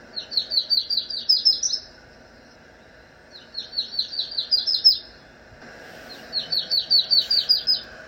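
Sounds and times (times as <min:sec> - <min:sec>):
Yellow-rumped Warbler: 0:00.0 - 0:08.0.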